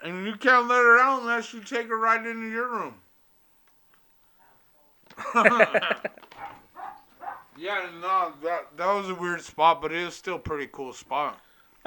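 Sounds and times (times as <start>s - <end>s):
speech: 0.0s - 3.0s, 5.3s - 6.2s, 7.6s - 11.8s
laughter: 5.1s - 6.5s
dog barking and yelping: 6.3s - 7.6s.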